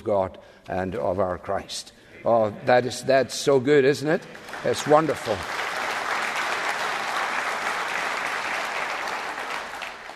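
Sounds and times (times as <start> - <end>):
speech: 0.0 - 5.7
audience clapping: 4.3 - 10.1.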